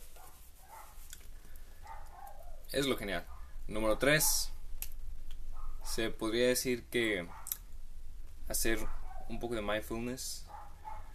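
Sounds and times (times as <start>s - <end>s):
low steady hum: 0.0s - 11.1s
dog giving short soft barks: 0.1s - 1.0s, 1.8s - 3.6s, 5.5s - 6.0s, 7.2s - 7.6s, 8.8s - 9.5s, 10.5s - 11.1s
speech: 2.7s - 4.6s, 5.9s - 7.4s, 8.5s - 10.5s.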